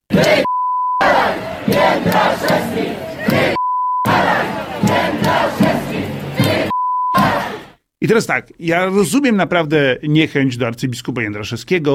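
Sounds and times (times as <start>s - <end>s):
large street crowd chanting at an abortion demonstration in Kraków Poland: 0.1s - 7.8s
steady electronic bleep: 3.6s - 4.2s, 6.7s - 7.3s
speech: 8.0s - 11.9s.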